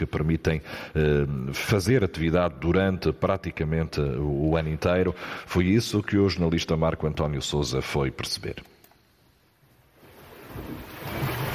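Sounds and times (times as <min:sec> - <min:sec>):
speech: 0:00.0 - 0:08.8, 0:10.6 - 0:10.9
sea waves washing in around the island of Porto Santo: 0:10.0 - 0:11.5.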